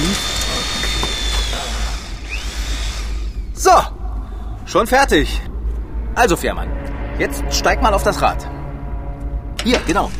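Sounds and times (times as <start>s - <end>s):
power drill driving screws to mount a wheel onto a raft: 0.0s - 3.5s
continuous low rumble: 1.7s - 10.1s
speech: 4.7s - 5.5s, 6.2s - 8.5s, 9.6s - 10.1s.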